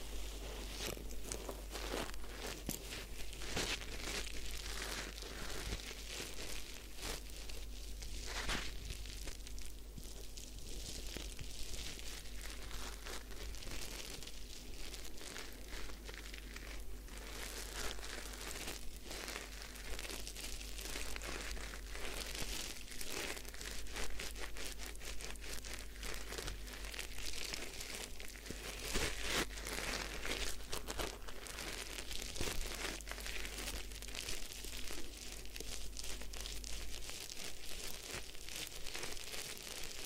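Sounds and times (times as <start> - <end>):
fingers rubbing through wet lathered hair: 0.0 - 40.0
low constant hum: 0.0 - 40.0.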